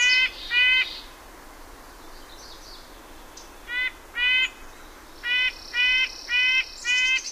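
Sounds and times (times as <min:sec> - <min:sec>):
red-breasted nuthatch nasal horn-like calls: 0:00.0 - 0:01.1, 0:03.7 - 0:04.6, 0:05.2 - 0:07.3.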